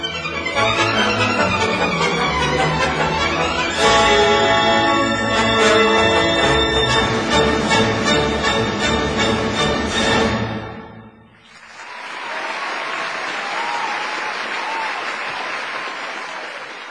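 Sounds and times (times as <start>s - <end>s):
orchestral chords: 0.0s - 11.4s
audience applause: 11.4s - 16.8s.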